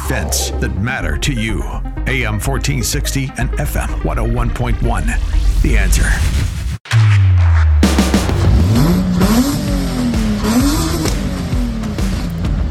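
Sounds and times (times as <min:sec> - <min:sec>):
speech: 0:00.1 - 0:06.5
flat-six Subaru engine revving with gritty exhaust rasp: 0:07.4 - 0:12.6.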